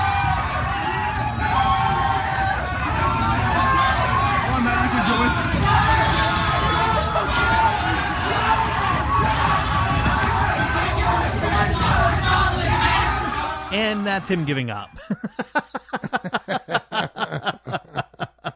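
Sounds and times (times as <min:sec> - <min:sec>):
large crowd cheering and yelling at a Sydney train station in Australia: 0:00.0 - 0:15.1
laughter: 0:03.0 - 0:12.5, 0:14.0 - 0:18.5
speech: 0:14.1 - 0:17.9.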